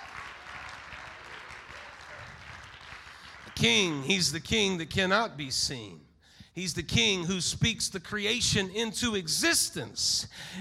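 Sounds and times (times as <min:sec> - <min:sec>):
large audience clapping in worship: 0:00.0 - 0:04.6
speech: 0:03.6 - 0:10.5.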